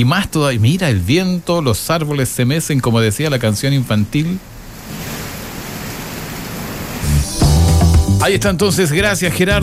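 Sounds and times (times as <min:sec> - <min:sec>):
speech: 0:00.0 - 0:05.1, 0:08.2 - 0:09.6
heavy rain pouring: 0:04.5 - 0:07.5.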